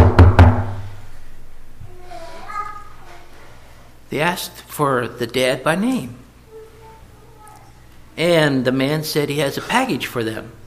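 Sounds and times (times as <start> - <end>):
firm knocks on a door: 0.0 - 0.8
speech: 4.1 - 6.2, 8.2 - 10.6.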